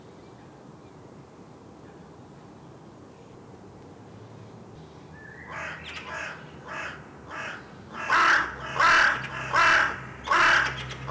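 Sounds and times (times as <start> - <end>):
Carrion crow Corvus corone cawing: 5.5 - 11.0.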